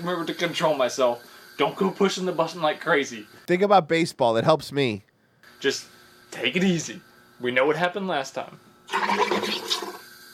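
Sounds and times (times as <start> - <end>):
water churning and bubbling as it is carbonated: 0.0 - 3.2, 8.9 - 10.3
speech: 0.0 - 9.7.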